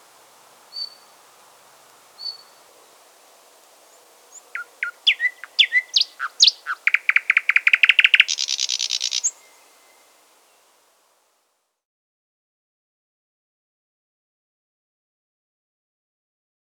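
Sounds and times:
Thrush nightingale song with soft high whistles, sharp notes, clicking rattle and harsh buzz: 0:04.5 - 0:09.6.

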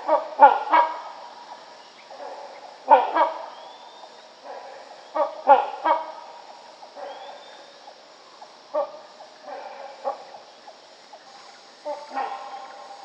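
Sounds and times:
rhinoceros hornbill honking: 0:00.0 - 0:13.0.

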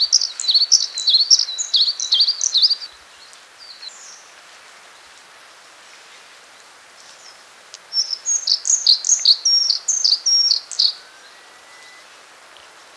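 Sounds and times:
Blue-capped redstart singing tinkling phrases: 0:00.0 - 0:02.9, 0:08.0 - 0:12.2.

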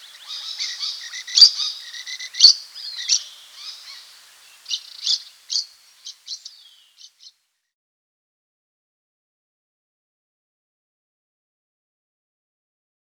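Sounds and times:
rufous babbler squeaky chattering calls: 0:00.0 - 0:07.3.

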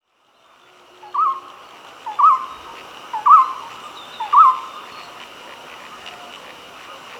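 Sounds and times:
faint steady background hiss: 0:00.0 - 0:07.1
Golden-throated barbet hooting song: 0:01.0 - 0:01.5, 0:02.1 - 0:04.9.

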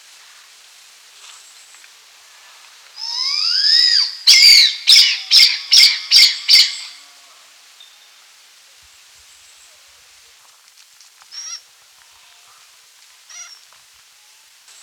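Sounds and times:
blood pheasant giving loud harsh squealing notes: 0:03.0 - 0:07.0, 0:13.3 - 0:13.6
faint high calls: 0:03.0 - 0:08.1, 0:11.3 - 0:12.6, 0:13.2 - 0:14.4.

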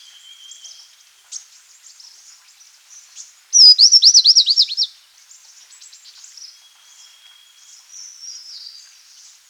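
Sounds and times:
Rufous-winged fulvetta calling and singing: 0:03.6 - 0:04.9.

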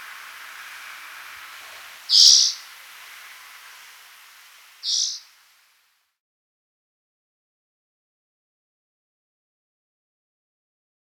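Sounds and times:
spotted forktail calling with thin shrill screeches: 0:00.0 - 0:05.6
soft background hiss: 0:00.0 - 0:06.1.

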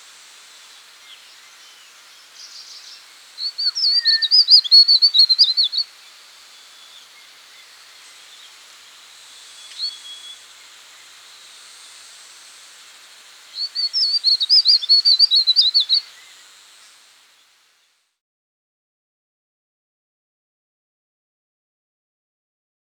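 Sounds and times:
verditer flycatcher twittering song: 0:00.0 - 0:17.0.

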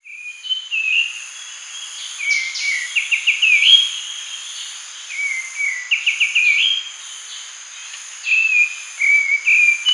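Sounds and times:
grey-cheeked bulbul song of fluty slurred whistles: 0:00.0 - 0:01.1, 0:02.2 - 0:04.0, 0:05.1 - 0:06.8, 0:08.3 - 0:09.9.

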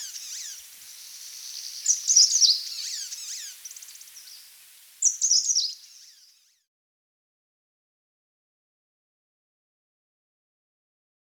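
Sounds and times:
constant high background hiss: 0:00.0 - 0:06.6
grey-sided bush warbler song: 0:00.0 - 0:06.7.

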